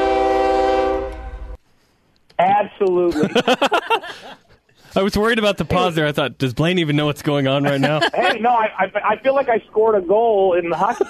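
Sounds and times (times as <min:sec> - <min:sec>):
train horn blaring: 0:00.0 - 0:01.6
speech: 0:02.7 - 0:11.0
laughter: 0:03.0 - 0:04.6, 0:07.2 - 0:08.9, 0:10.6 - 0:11.0.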